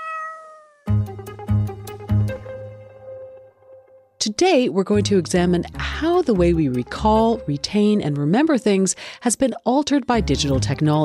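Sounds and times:
cat meowing: 0.0s - 0.9s
speech: 4.2s - 11.0s.

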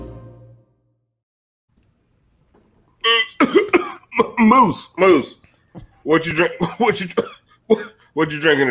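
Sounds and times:
throat clearing from a parched throat: 3.0s - 4.4s, 7.2s - 8.1s
dry harsh coughing from a parched throat: 3.0s - 4.6s, 6.6s - 8.1s
speech: 4.5s - 5.4s, 6.0s - 8.6s.

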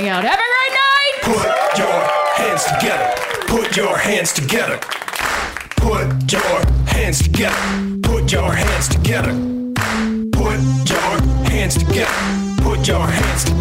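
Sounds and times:
speech: 0.0s - 0.6s, 2.6s - 5.0s, 5.8s - 10.7s, 11.7s - 13.6s
live show audience applause: 0.0s - 5.8s
upbeat music: 0.0s - 13.6s.

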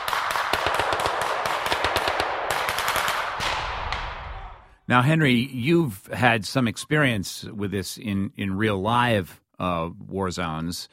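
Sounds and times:
automatic gunfire from armed men in a combat video game: 0.0s - 4.3s
speech: 4.9s - 10.9s.

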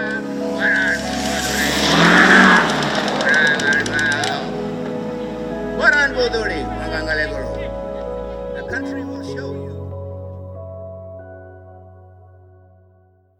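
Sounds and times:
voices murmuring: 0.0s - 9.9s
ute engine revving with turbo whoosh accelerating past: 0.2s - 7.4s.

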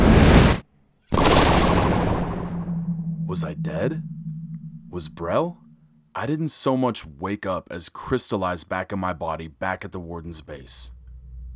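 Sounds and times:
explosion, blinding burst of energy through a room: 1.1s - 6.1s
speech: 3.3s - 4.2s, 4.9s - 5.6s, 6.2s - 11.0s.

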